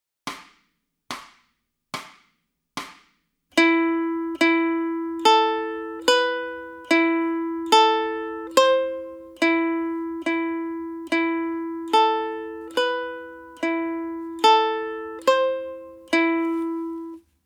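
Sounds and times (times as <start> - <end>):
ukulele warm-up in E: 3.6 - 17.3.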